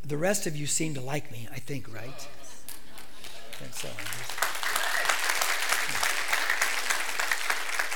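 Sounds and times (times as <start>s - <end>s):
speech: 0.1s - 2.4s, 3.6s - 4.5s
crowd applauding: 2.9s - 7.9s.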